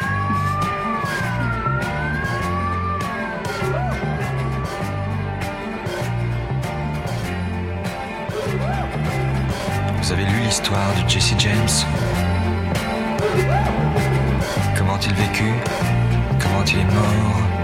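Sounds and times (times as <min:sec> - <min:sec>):
siren wailing with warbling pitch: 0:00.0 - 0:05.2
steady pulsing rhythmic background: 0:00.0 - 0:17.6
speech: 0:10.6 - 0:12.1, 0:15.0 - 0:15.9, 0:16.5 - 0:17.6.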